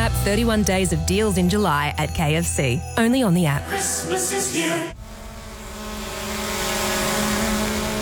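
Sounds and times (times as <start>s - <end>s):
speech: 0.2s - 5.0s
drone propellers buzzing in flight: 4.9s - 8.0s.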